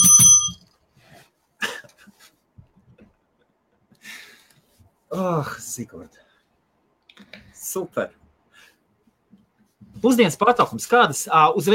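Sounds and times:
small bell ringing: 0.0s - 0.6s
speech: 5.1s - 6.3s, 7.2s - 8.2s, 10.0s - 11.7s.

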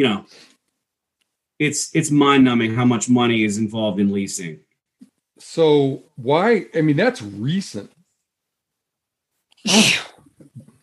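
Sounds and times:
speech: 0.0s - 0.4s, 1.6s - 4.7s, 5.4s - 8.0s, 9.6s - 10.1s
person sneezing loudly: 9.6s - 10.2s.

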